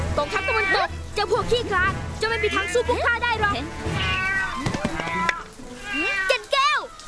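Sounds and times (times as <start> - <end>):
cat meowing: 0.2 - 0.9, 2.2 - 2.9, 3.9 - 7.0
speech: 1.2 - 4.4.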